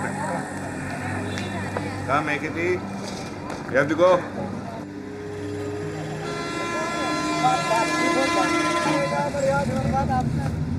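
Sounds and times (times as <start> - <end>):
busy street traffic in Delhi India: 0.0 - 10.7
crowd noise: 0.0 - 10.7
speech: 2.1 - 4.6, 9.3 - 10.5
car horns honking in Delhi street traffic: 6.1 - 9.7.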